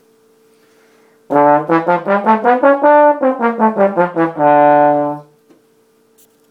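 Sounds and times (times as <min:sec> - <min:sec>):
trombone: 0:01.3 - 0:05.3.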